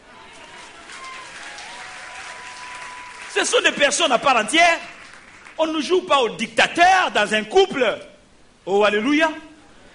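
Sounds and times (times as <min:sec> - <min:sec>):
crowd cheering: 0:00.0 - 0:05.6
audience applauding: 0:00.2 - 0:05.8
speech: 0:03.4 - 0:04.9, 0:05.6 - 0:09.5.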